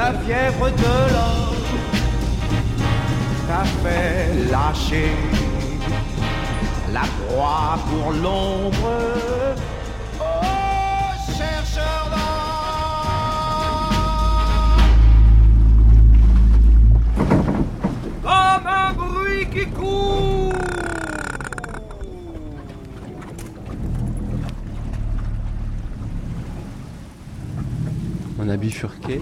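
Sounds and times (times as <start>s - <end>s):
motorized dugout canoe engine rumbling on a river: 0.0s - 29.2s
speech: 0.1s - 2.6s, 3.5s - 6.0s, 6.9s - 9.7s, 28.4s - 29.2s
tonal calls and chirps: 20.0s - 24.5s.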